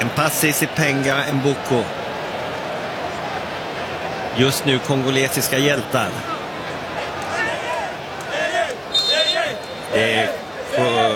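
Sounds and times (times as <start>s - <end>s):
large stadium crowd of football fans chanting and singing: 0.0s - 11.1s
speech: 0.1s - 2.0s, 4.4s - 6.4s, 10.0s - 11.1s.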